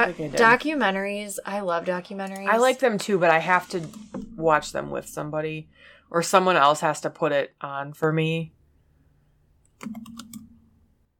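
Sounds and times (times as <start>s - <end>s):
speech: 0.0s - 8.6s, 9.8s - 10.3s
faint typing on a computer keyboard while searching: 9.8s - 10.5s.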